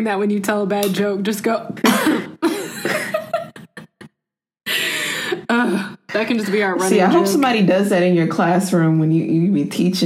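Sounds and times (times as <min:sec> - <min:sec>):
speech: 0:00.0 - 0:02.3, 0:05.6 - 0:10.0
short deliberate coughs: 0:01.8 - 0:03.1
laughter: 0:02.4 - 0:04.9
noisy breathy sound: 0:04.7 - 0:06.1.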